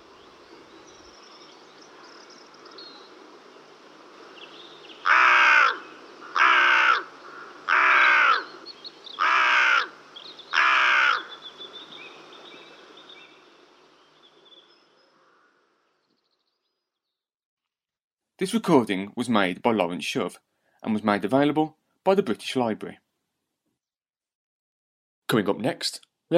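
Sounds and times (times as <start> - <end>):
soft hum of insects: 0.0 - 16.5
carrion crow cawing: 5.0 - 12.2, 15.1 - 15.8
speech: 18.4 - 23.0, 25.3 - 26.3.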